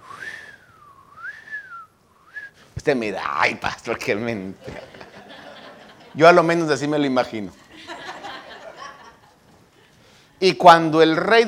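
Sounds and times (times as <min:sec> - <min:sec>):
whistle imitating a falling arrow: 0:00.0 - 0:02.7
speech: 0:02.8 - 0:05.0, 0:06.2 - 0:07.6, 0:10.4 - 0:11.4
laughter: 0:04.3 - 0:06.6, 0:07.5 - 0:10.0.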